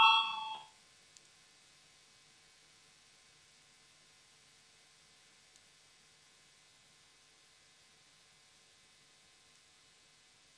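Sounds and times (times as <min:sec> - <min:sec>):
bright electronic voting bell in a parliamentary chamber: 0:00.0 - 0:00.6.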